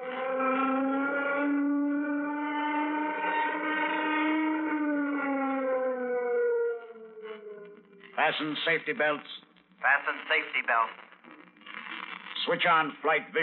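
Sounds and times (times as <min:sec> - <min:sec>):
warning siren aboard a spacecraft before takeoff: 0:00.0 - 0:08.2
speech: 0:08.2 - 0:11.0, 0:12.4 - 0:13.4.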